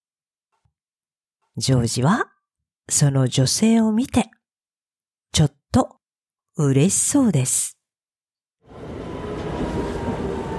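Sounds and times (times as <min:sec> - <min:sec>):
speech: 0:01.6 - 0:02.3, 0:02.9 - 0:04.4, 0:05.4 - 0:06.0, 0:06.6 - 0:07.8
train pulling into a station rumbling: 0:08.7 - 0:10.5.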